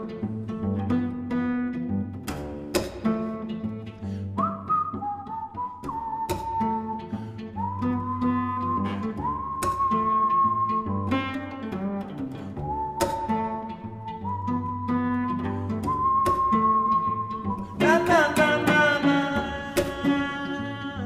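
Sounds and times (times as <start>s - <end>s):
plucked jazzy cello chords with pizzicato strikes: 0.0s - 21.0s
cellist whistling a sustained melody: 4.2s - 21.0s.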